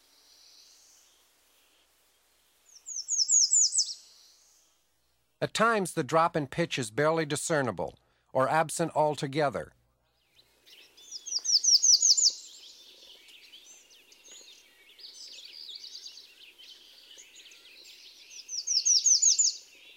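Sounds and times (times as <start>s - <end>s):
redstart singing fast high two-note phrases: 2.7s - 4.5s, 10.7s - 19.9s
redstart chirping and twittering: 2.7s - 4.7s, 10.1s - 19.9s
speech: 5.4s - 9.8s.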